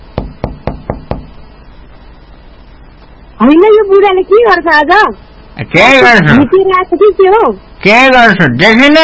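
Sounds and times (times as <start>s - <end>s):
knocking on a door: 0.1s - 1.4s
speech: 3.4s - 9.0s.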